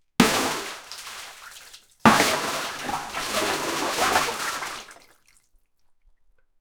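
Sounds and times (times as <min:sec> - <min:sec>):
many big buckets of wet liquid pouring: 0:00.2 - 0:05.4.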